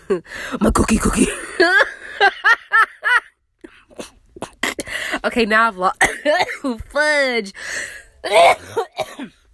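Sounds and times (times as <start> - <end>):
speech: 0.1 - 2.4, 5.2 - 9.3
person coughing: 6.0 - 6.7, 8.2 - 9.5.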